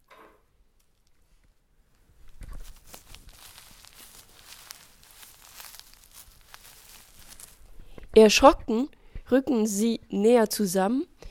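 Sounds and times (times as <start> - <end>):
footsteps crunching in snow: 2.1 - 7.9
speech: 8.2 - 11.1.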